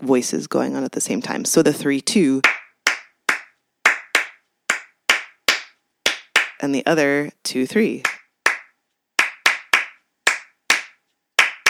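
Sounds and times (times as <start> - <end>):
speech: 0.0 - 2.6, 6.6 - 8.2
layered hand claps in interlocking rhythms: 2.4 - 6.6, 8.0 - 11.6.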